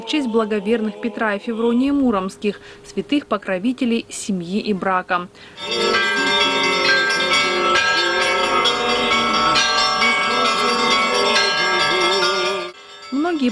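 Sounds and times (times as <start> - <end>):
speech: 0.0 - 6.0
joyful peal of church bells: 5.5 - 13.5.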